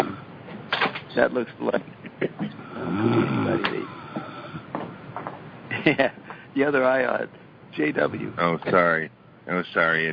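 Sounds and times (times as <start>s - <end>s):
speech: 1.2s - 4.3s, 5.8s - 10.1s
person snoring roughly: 2.5s - 4.7s.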